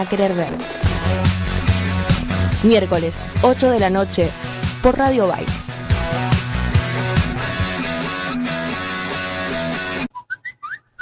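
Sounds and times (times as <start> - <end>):
speech: 0.0 - 1.4, 2.6 - 6.3
loud busy music: 0.0 - 10.1
short whistled jingle opening an ad break: 10.1 - 11.0.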